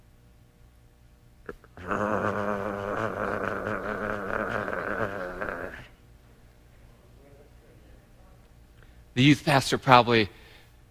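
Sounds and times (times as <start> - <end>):
rumbling growl: 1.8 - 6.0
speech: 9.2 - 10.4.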